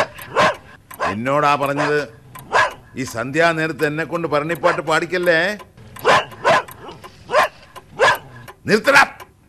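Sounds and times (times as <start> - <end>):
dog barking at dusk: 0.0 - 2.9, 4.6 - 5.0, 6.0 - 8.4
speech: 1.1 - 2.2, 2.9 - 5.7, 8.7 - 9.2.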